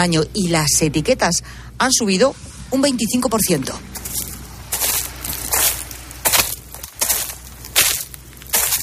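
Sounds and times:
speech: 0:00.0 - 0:04.2
low outdoor hum: 0:00.0 - 0:08.8
footsteps crunching through dry ground and brush in an olive grove: 0:03.9 - 0:08.8.

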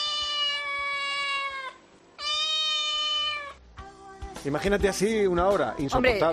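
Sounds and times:
cat meowing insistently for attention: 0:00.0 - 0:03.6
speech: 0:04.4 - 0:06.3.

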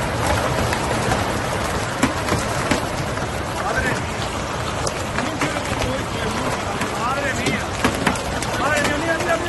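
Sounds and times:
large hailstones pounding on cars at night in El Ejido, Almería, Spain: 0:00.0 - 0:09.4
rushing water-like hiss as water reaches car seats: 0:00.0 - 0:09.4.

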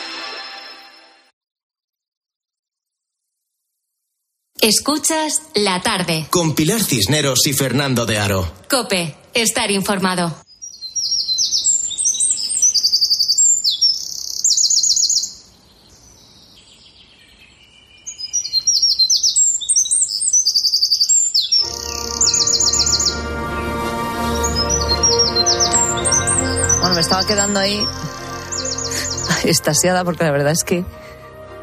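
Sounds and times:
speech: 0:04.6 - 0:10.5, 0:29.5 - 0:31.1
birds chirping and singing in a forest: 0:10.5 - 0:31.1.

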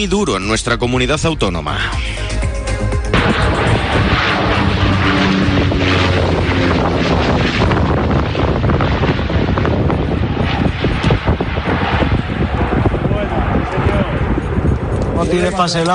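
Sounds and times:
speech: 0:00.0 - 0:02.4, 0:03.3 - 0:03.8, 0:15.3 - 0:15.9
firefighting seaplanes roaring while dropping water on a wildfire in Cáceres, Spain: 0:01.6 - 0:15.9
wind buffeting the microphone: 0:03.2 - 0:15.9.

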